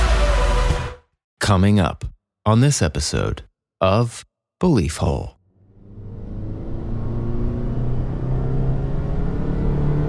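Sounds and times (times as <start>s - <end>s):
speech: 1.4s - 5.4s
car driving down a road at night: 5.6s - 10.0s.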